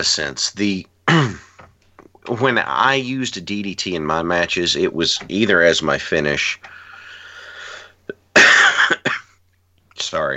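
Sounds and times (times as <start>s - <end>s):
speech: 0.0s - 1.4s, 2.3s - 6.8s, 10.0s - 10.3s
man coughing: 1.1s - 1.6s, 8.3s - 9.4s.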